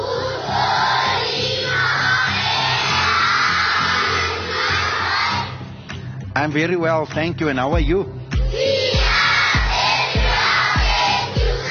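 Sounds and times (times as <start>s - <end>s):
large group of schoolchildren screaming and shouting excitedly: 0.0s - 5.6s, 8.5s - 11.6s
steady rhythmic low thumps like stamping: 5.6s - 11.6s
speech: 6.4s - 8.7s.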